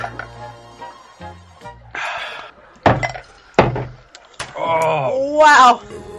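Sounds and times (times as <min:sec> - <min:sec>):
shot glasses dropped into pints of beer: 0:02.8 - 0:04.6
speech: 0:05.4 - 0:05.9.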